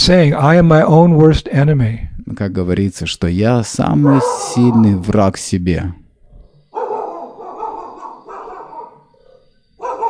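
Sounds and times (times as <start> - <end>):
speech: 0.0 - 6.0
dog in Vrindavan barking raspily: 4.0 - 5.0, 6.7 - 10.0.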